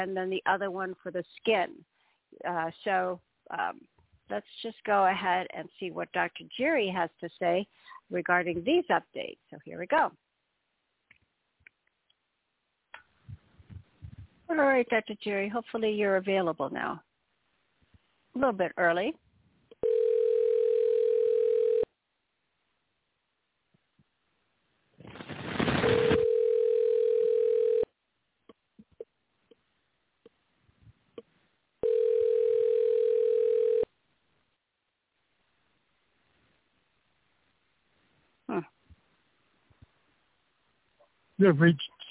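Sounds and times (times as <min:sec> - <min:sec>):
speech: 0:00.0 - 0:10.2, 0:14.5 - 0:17.1, 0:18.4 - 0:19.2, 0:41.4 - 0:42.0
outgoing phone call ringback tone: 0:19.8 - 0:21.9, 0:25.8 - 0:27.9, 0:31.8 - 0:33.9
brief rush of noise: 0:25.0 - 0:26.2.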